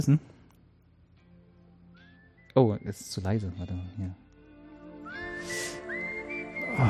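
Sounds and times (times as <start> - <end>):
speech: 0.0 - 0.3, 2.6 - 4.2
person whistling a short melody: 1.9 - 3.9, 4.9 - 6.8.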